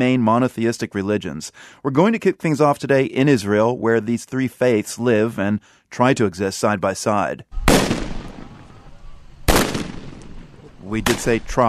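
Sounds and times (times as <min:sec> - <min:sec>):
speech: 0:00.0 - 0:08.0, 0:10.9 - 0:11.6
gunfire during clashes between Palestinians and Israeli troops: 0:07.6 - 0:11.6.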